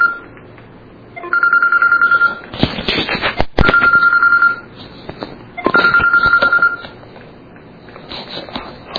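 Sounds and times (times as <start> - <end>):
telephone ringing with an electronic trill: 0.0 - 0.3, 1.2 - 2.5, 3.6 - 4.8, 5.6 - 7.0.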